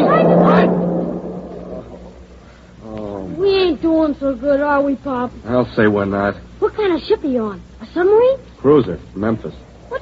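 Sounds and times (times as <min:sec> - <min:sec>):
vehicle roaring by on a road: 0:00.0 - 0:02.4
speech: 0:04.1 - 0:09.7.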